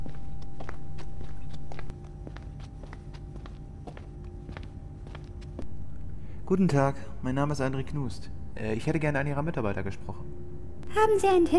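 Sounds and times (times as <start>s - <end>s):
footsteps walking across a modern lobby toward the reception desk: 0.0s - 5.7s
speech: 6.5s - 10.2s, 11.0s - 11.5s.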